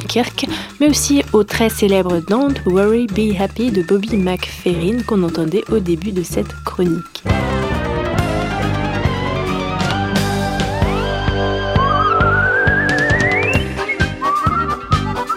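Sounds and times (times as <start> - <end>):
speech: 0.1 - 7.4
person whistling a bright sliding melody: 3.7 - 5.1, 10.8 - 15.3
busy backing music with a steady rhythmic beat: 7.3 - 15.3.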